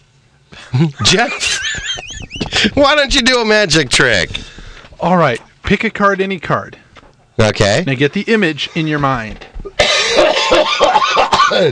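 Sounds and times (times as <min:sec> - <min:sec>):
laughter: 0:00.7 - 0:03.2, 0:09.6 - 0:11.7
speech: 0:00.7 - 0:06.8, 0:07.4 - 0:09.5, 0:10.2 - 0:11.7
person clearing throat: 0:09.6 - 0:11.7
person coughing: 0:09.7 - 0:11.7.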